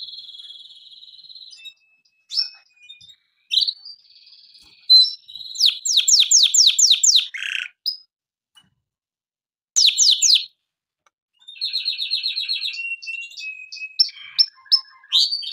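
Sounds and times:
canary singing: 0:00.0 - 0:08.1, 0:09.8 - 0:10.6, 0:11.4 - 0:15.5.

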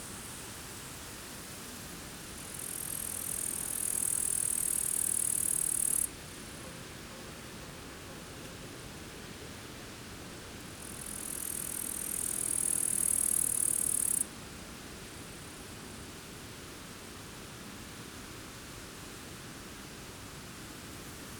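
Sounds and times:
wind near a forest: 0:00.0 - 0:21.3
grasshoppers chirping near a forest: 0:02.5 - 0:06.1, 0:10.8 - 0:14.2.

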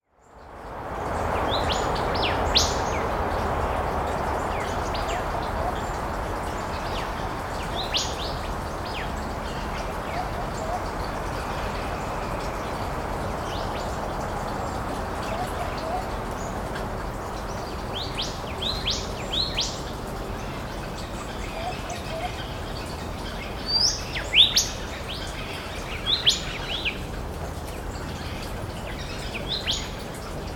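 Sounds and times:
nature forest ambience: 0:00.0 - 0:30.2.

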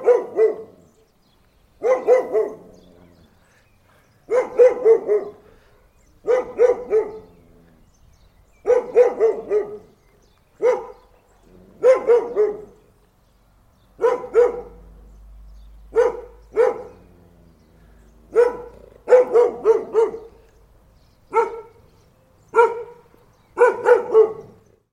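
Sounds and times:
dog barking gruffly: 0:00.0 - 0:00.9, 0:01.8 - 0:03.4, 0:04.3 - 0:05.6, 0:06.2 - 0:07.9, 0:08.6 - 0:10.0, 0:10.6 - 0:12.8, 0:14.0 - 0:14.9, 0:15.9 - 0:20.5, 0:21.3 - 0:21.8, 0:22.5 - 0:24.7.

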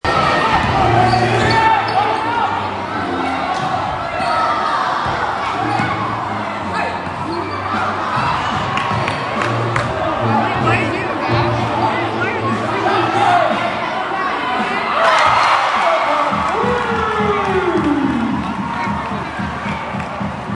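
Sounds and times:
basketball game: 0:00.0 - 0:20.5.

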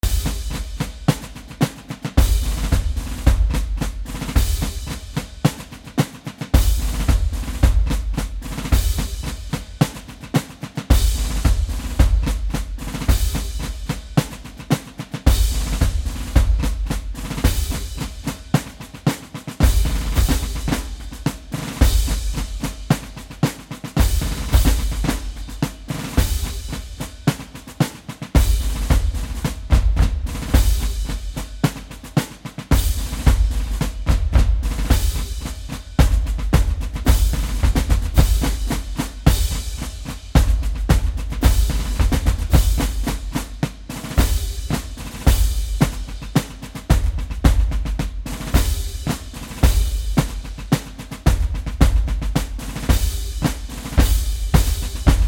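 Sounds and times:
marching drums drum solo: 0:00.0 - 0:55.2.

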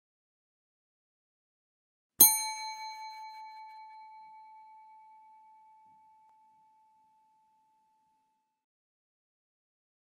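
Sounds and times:
hotel bell ringing: 0:02.2 - 0:08.0.

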